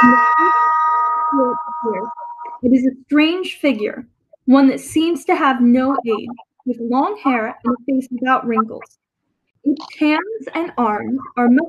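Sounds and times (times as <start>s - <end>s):
large street clock bell striking the hour: 0.0s - 2.6s
speech: 2.7s - 9.0s, 9.6s - 11.6s.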